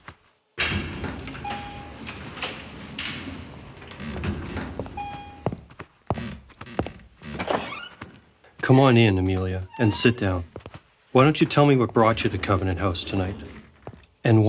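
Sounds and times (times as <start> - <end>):
elevator doors rumbling shut with a dull thunk: 0.6 - 5.5, 11.8 - 13.8
speech: 8.7 - 10.5, 11.1 - 13.6, 14.2 - 14.4.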